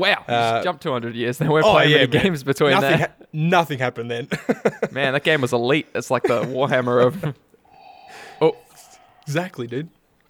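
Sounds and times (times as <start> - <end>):
speech: 0.0 - 7.5, 8.1 - 8.6, 9.3 - 10.2
laughter: 1.3 - 3.1, 4.3 - 7.4
mechanical breathing sound from a novelty bottle opener opening a beer: 7.6 - 9.5.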